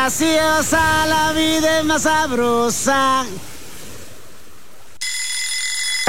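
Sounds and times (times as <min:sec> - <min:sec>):
speech: 0:00.1 - 0:03.5
alarm clock ringing: 0:05.0 - 0:06.0.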